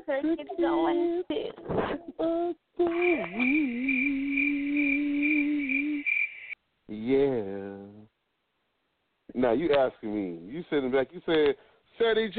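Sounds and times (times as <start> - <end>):
speech: 0.1 - 3.7, 9.5 - 12.3
cricket chirping: 2.8 - 6.6.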